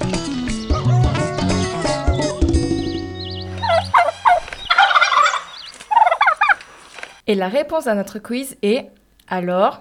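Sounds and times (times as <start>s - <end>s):
turkey gobbling and yelping: 0.0s - 6.9s
speech: 7.3s - 9.8s.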